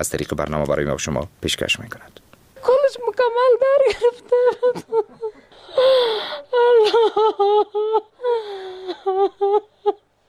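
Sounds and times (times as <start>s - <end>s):
speech: 0.0s - 2.3s, 2.9s - 10.0s
grieving mother crying for her daughters killed in a car bombing in Kabul: 3.2s - 10.1s
gasping breaths of a grieving mother between cries: 5.3s - 6.6s, 8.2s - 9.2s.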